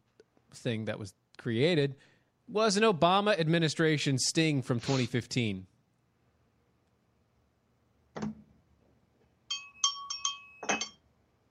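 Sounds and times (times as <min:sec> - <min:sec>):
speech: 0:00.5 - 0:05.7
bright bell dinging: 0:09.5 - 0:11.0.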